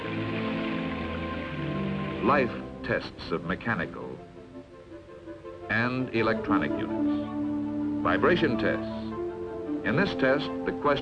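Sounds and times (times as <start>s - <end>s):
simulated rain pattering on a hard surface in a rain test of an airborne computer: 0.0s - 2.8s
speech: 2.2s - 4.1s, 5.7s - 7.2s, 8.0s - 9.0s, 9.8s - 11.0s.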